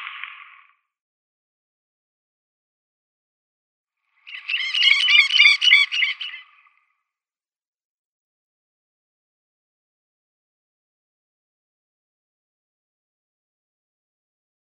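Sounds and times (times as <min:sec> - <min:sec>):
Red-necked Stint calls: 0:04.3 - 0:06.6.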